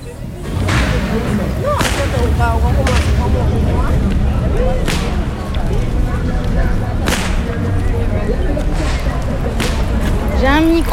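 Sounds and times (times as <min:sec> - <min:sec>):
carnival crowd noise and voices: 0:00.0 - 0:10.9
whip cracking at a carnival: 0:07.0 - 0:07.6, 0:08.8 - 0:10.0.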